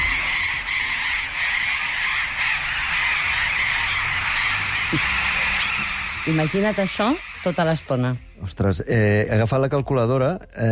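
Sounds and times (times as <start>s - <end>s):
large flock of parrots squawking and chattering in a town: 0.0s - 8.4s
speech: 4.9s - 5.2s, 6.2s - 10.6s.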